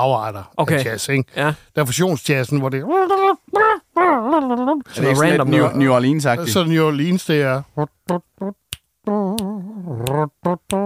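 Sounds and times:
speech: 0.0 - 10.8
person humming a horn-like melody imitating a wind instrument: 2.8 - 5.7, 7.8 - 10.8
finger snapping: 8.1 - 10.8.

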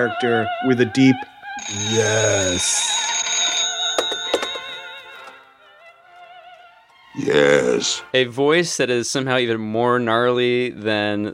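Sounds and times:
speech: 0.0 - 3.1, 7.2 - 11.3
telephone bell ringing: 1.6 - 5.6.

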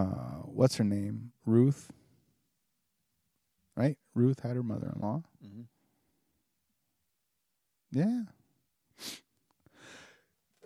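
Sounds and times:
speech: 0.0 - 2.0, 3.8 - 5.7, 7.9 - 8.4, 9.0 - 9.2
person sneezing: 9.0 - 9.3
breathy exhale or sniff: 9.0 - 10.3.

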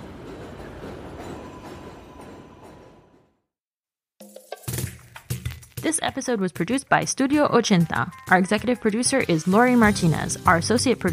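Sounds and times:
train passing overhead: 0.0 - 3.4
speech: 5.8 - 11.1.

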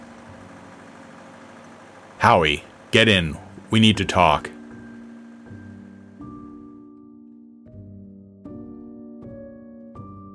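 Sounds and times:
milk truck engine idling: 0.0 - 6.7
speech: 2.2 - 4.6.

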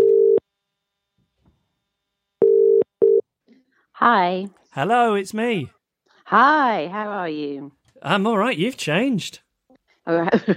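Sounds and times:
telephone ringback tone while placing a phone call: 2.4 - 3.2
speech: 4.0 - 9.4, 10.1 - 10.5.

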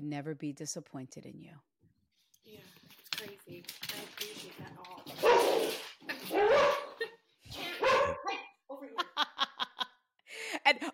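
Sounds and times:
speech: 0.0 - 1.8, 2.5 - 6.8, 10.6 - 10.9
dogs barking and yelping excitedly: 5.1 - 7.1, 7.8 - 8.2
laughter: 8.9 - 10.0.

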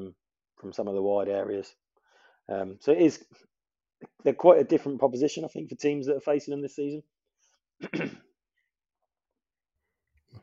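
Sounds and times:
speech: 0.1 - 1.8, 2.5 - 7.2, 7.8 - 8.3
throat clearing: 7.8 - 8.3.

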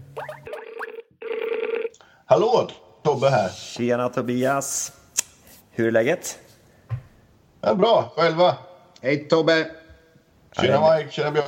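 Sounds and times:
faint warbling sounds: 0.0 - 1.1
telephone line ringing tone: 0.5 - 1.9
speech: 2.3 - 5.0, 5.8 - 6.4, 7.6 - 9.8, 10.5 - 11.4.

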